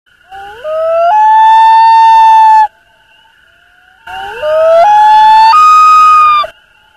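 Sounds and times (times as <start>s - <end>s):
wail: 0.3s - 2.7s, 4.1s - 6.5s.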